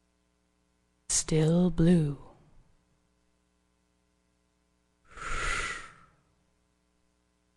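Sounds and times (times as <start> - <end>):
faint hum: 0.0 - 7.5
speech: 1.3 - 2.2
breathy whoosh sound effect: 5.1 - 6.2.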